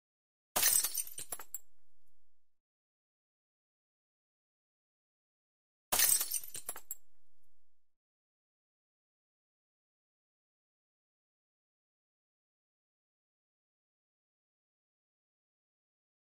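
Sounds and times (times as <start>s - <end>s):
glass bottle breaking: 0.6s - 1.6s, 5.9s - 7.0s.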